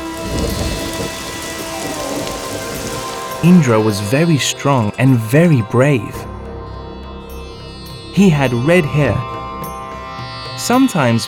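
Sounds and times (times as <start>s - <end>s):
deep rumble of thunder: 0.0s - 5.0s
steady rain: 0.0s - 5.0s
speech: 3.4s - 6.3s, 8.2s - 9.3s, 10.6s - 11.2s.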